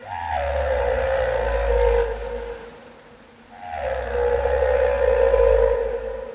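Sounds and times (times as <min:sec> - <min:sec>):
recorded whale calls: 0:00.0 - 0:06.3.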